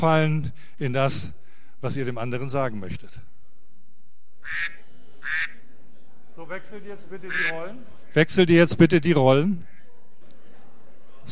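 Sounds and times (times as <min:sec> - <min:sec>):
speech: 0:00.0 - 0:03.3, 0:04.4 - 0:05.6, 0:06.4 - 0:09.8
duck quacks used as a timer signal: 0:04.4 - 0:05.6, 0:07.3 - 0:07.6.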